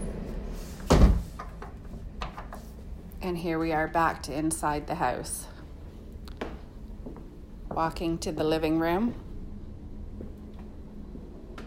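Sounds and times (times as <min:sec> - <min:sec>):
sunroom door shutting with a heavy thud: 0:00.8 - 0:01.5
speech: 0:03.2 - 0:05.5, 0:07.8 - 0:09.2.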